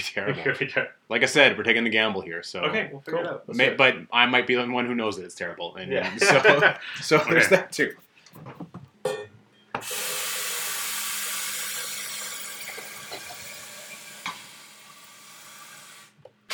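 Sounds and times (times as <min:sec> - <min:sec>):
speech: 0:00.0 - 0:09.2
laughter: 0:06.0 - 0:07.6
tap water running into a kettle: 0:09.8 - 0:16.5.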